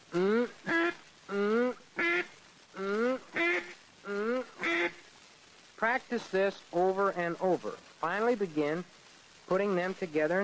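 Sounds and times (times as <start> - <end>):
duck call blown in imitation of a duck quack: 0.6 - 5.0
speech: 5.9 - 10.4.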